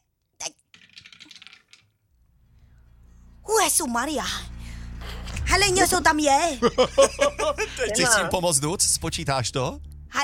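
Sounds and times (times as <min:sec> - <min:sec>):
die thrown and rolling across a hard surface: 0:00.7 - 0:02.1
speech: 0:03.8 - 0:04.5, 0:05.5 - 0:10.2
laughter: 0:06.6 - 0:08.3.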